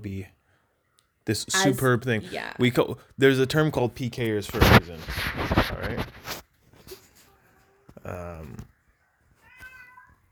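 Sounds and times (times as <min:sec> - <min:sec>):
speech: 0:00.0 - 0:00.4, 0:01.3 - 0:06.4, 0:08.0 - 0:08.7
cat meowing: 0:09.4 - 0:10.3.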